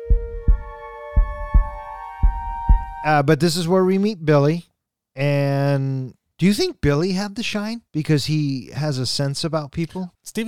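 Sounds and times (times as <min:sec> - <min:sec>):
heartbeat thumps in lub-dub pairs: 0:00.0 - 0:03.1
speech: 0:03.0 - 0:10.4.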